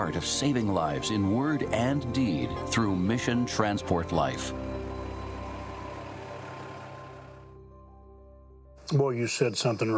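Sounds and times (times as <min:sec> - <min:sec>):
speech: 0:00.0 - 0:04.7, 0:08.9 - 0:09.9
heavy truck engine rumbling as it pulls out: 0:00.0 - 0:07.6.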